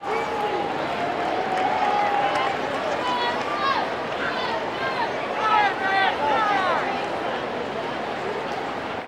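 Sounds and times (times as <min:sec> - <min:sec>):
baseball crowd chatter: 0:00.0 - 0:09.0.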